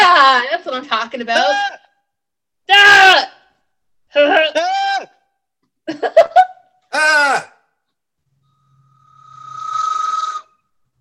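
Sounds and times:
speech: 0.1s - 1.8s, 2.7s - 3.4s, 4.2s - 4.8s
train conductor's whistle blast: 8.5s - 11.0s.

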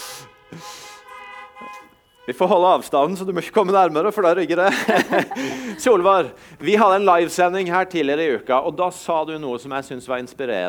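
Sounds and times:
several car horns honking in greeting: 0.0s - 4.4s
speech: 2.3s - 10.6s
laughter: 4.0s - 6.4s.

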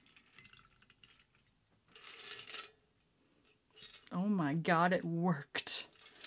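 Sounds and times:
whiskey cocktail poured into a glass: 0.0s - 2.2s
speech: 4.2s - 5.7s.

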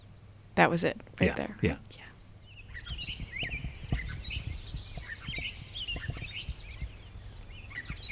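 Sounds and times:
chorus of other chirping birds: 0.0s - 8.1s
speech: 0.6s - 2.1s
clay-colored sparrow's flat insect-like buzzes: 1.4s - 8.1s
steady low knocking and rumbling noise: 2.8s - 7.0s.

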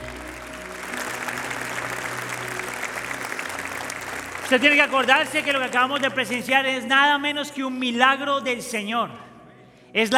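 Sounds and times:
church audience applauding after a baptism: 0.0s - 6.9s
speech: 4.5s - 9.3s, 9.9s - 10.1s.

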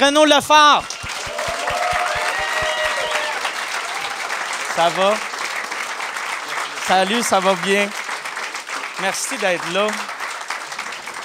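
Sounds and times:
speech: 0.0s - 1.0s, 4.8s - 5.3s, 6.9s - 8.0s, 9.0s - 10.1s
audience clapping: 0.0s - 11.2s
whoops and cheers from audience: 0.8s - 4.4s.

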